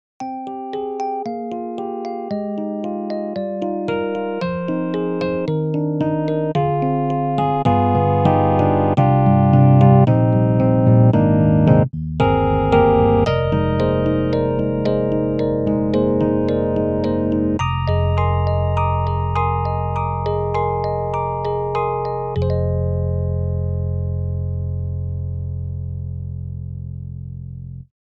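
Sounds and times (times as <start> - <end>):
retro Rhodes electric piano on EDIROL Super Quartet: 0.2 - 27.7.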